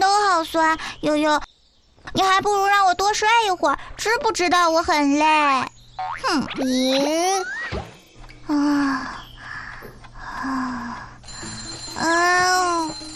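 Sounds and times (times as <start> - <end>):
speech: 0.4 - 1.5, 2.2 - 7.6, 8.5 - 9.2
alarm clock ringing with quirky electronic bouncy sliding beeps: 8.8 - 13.1.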